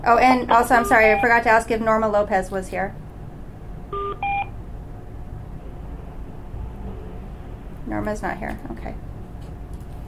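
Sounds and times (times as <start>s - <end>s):
speech: 0.0s - 3.0s, 8.0s - 9.1s
steady low hum of noise: 0.0s - 10.0s
short electronic phone-line tones: 0.5s - 1.4s, 3.9s - 4.5s.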